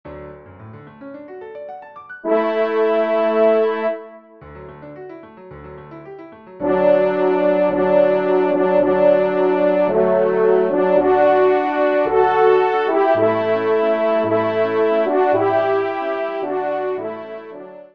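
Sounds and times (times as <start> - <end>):
horn duet playing an introit: 2.2 - 4.3, 6.6 - 17.9.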